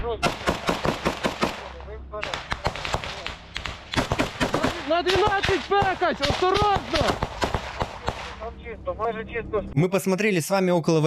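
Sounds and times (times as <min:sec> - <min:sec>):
speech: 0:00.1 - 0:00.7, 0:04.9 - 0:07.3, 0:08.7 - 0:11.0
rapid irregular bursts of distant gunfire in combat video: 0:00.2 - 0:08.5.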